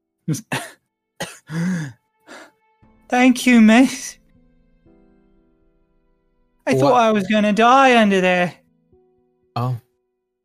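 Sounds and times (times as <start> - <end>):
speech: 0.3 - 0.8, 3.2 - 4.2, 6.7 - 8.6, 9.6 - 9.8
voice imitating a young boy's fit of coughing and hacking: 0.3 - 1.9, 6.7 - 7.0.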